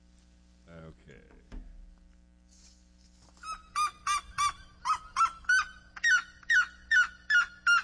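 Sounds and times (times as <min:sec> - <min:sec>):
speech: 0:00.9 - 0:01.5
red-legged seriema calling: 0:03.4 - 0:07.8.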